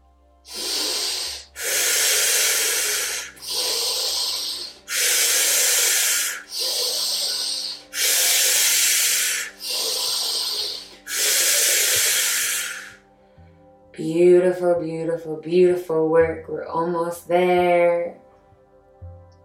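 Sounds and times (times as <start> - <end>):
loud rhythmic forceful breathing in through nose and out: 0.0 - 13.9
speech: 14.0 - 18.2.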